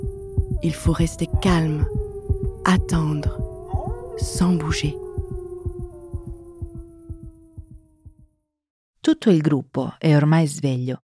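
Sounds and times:
wolves howling: 0.0s - 8.2s
deep thumping heartbeat: 0.0s - 8.3s
speech: 0.6s - 2.0s, 2.6s - 3.4s, 4.2s - 5.0s, 9.0s - 11.0s.

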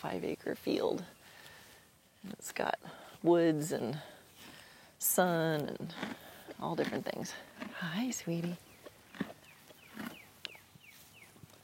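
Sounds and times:
speech: 0.0s - 1.3s, 2.2s - 4.2s, 5.0s - 9.3s
horses chewing hay: 3.2s - 11.6s.

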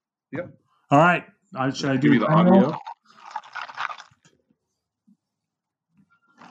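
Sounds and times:
speech: 0.3s - 2.9s
soda water fizzing in a non-alcoholic elderflower and mandarin drink: 2.0s - 4.3s
ice cubes crackling and rattling in a glass of elderflower and mandarin soda drink: 2.7s - 4.3s.

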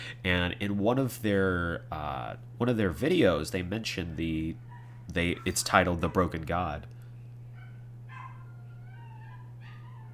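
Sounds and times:
steady low electrical hum: 0.0s - 10.1s
speech: 0.1s - 7.0s
dog barking: 4.5s - 6.8s, 7.5s - 10.1s
dog whining yelp: 7.6s - 10.1s.

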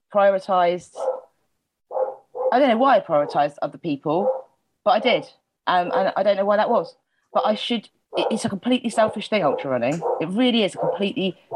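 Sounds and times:
speech: 0.1s - 1.1s, 2.5s - 11.5s
pet dog barking: 0.9s - 3.6s, 4.2s - 5.3s, 5.9s - 6.2s, 8.1s - 11.5s.

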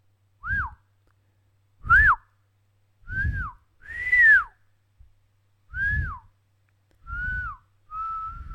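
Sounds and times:
person whistling a simple tune: 0.4s - 0.8s, 3.1s - 4.6s, 5.7s - 6.3s, 7.0s - 8.5s.

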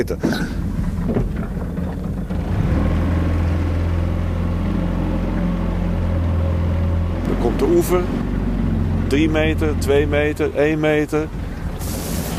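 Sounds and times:
speech: 0.0s - 1.6s, 7.4s - 8.3s, 9.1s - 12.0s
small boat motor given throttle while landing at a shore: 0.0s - 12.3s.

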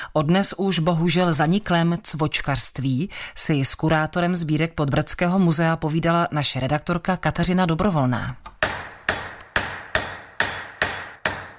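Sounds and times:
speech: 0.2s - 8.5s
hammer striking hot wire on a small anvil: 8.6s - 11.5s.

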